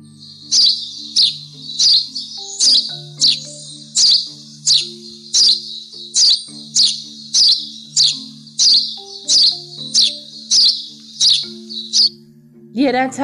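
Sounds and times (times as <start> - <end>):
small songbird chirping, sparrow or bluebird: 0.0 - 13.2
speech: 12.8 - 13.2.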